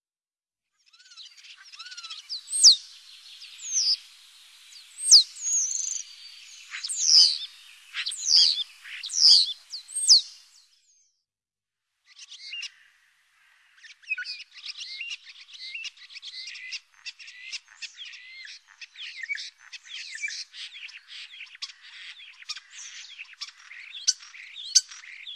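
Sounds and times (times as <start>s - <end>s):
common starlings calling: 0.9s - 10.6s, 13.6s - 25.3s.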